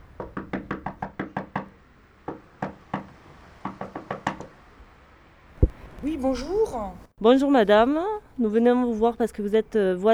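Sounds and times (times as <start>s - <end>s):
knocking on a neighbour's house door in Val d'Oise France: 0.0s - 5.8s
speech: 6.0s - 10.1s.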